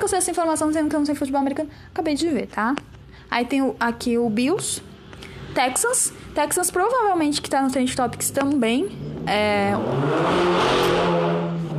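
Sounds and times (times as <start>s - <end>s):
speech: 0.1s - 4.9s, 5.5s - 11.2s
motorcycle engine roaring as it passes along the street: 8.0s - 11.7s.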